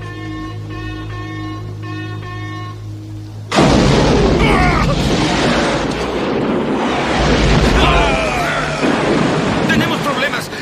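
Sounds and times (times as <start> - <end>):
massed gunfire in a naval battle scene: 3.5 - 10.2.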